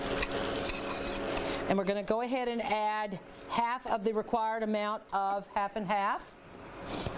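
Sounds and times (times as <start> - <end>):
stirring dark brown sugar into a butter mixture for ice cream custard: 0.1 - 1.7
speech: 1.7 - 7.0.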